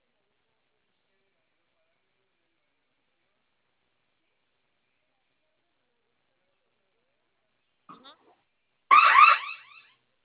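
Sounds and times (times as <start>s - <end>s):
faint noise: 0.0s - 10.2s
shrill electronic alarm tone from a security alarm panel: 8.9s - 9.9s.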